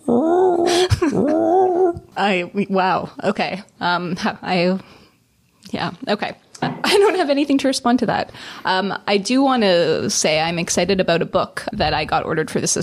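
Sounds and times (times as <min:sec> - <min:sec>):
person imitating a mournful manatee call: 0:00.0 - 0:02.1
speech: 0:02.2 - 0:05.0, 0:05.7 - 0:12.8.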